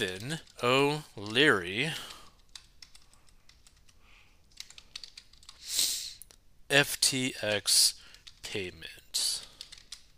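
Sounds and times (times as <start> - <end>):
speech: 0.0 - 2.1, 6.7 - 9.4
typing on a computer keyboard: 0.0 - 5.6, 8.0 - 10.1.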